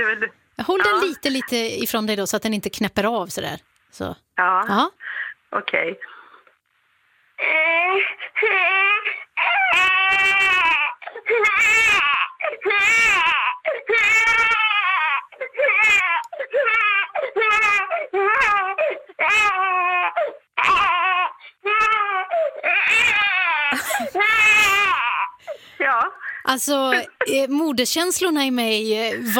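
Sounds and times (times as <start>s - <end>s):
speech: 0.1s - 6.2s, 7.4s - 10.7s, 11.3s - 14.6s, 25.8s - 29.3s
voice imitating a crying baby: 7.4s - 25.4s.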